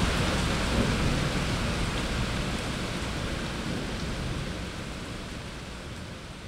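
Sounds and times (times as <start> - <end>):
heavy rain downpour: 0.0 - 6.4.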